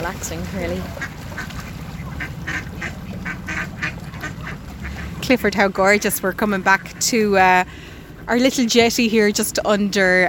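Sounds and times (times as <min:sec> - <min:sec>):
speech: 0:00.0 - 0:01.5, 0:05.3 - 0:10.2
steady low rumble of water or a boat engine: 0:00.0 - 0:10.2
ducks quacking excitedly while being fed at a riverside jetty: 0:00.7 - 0:08.4.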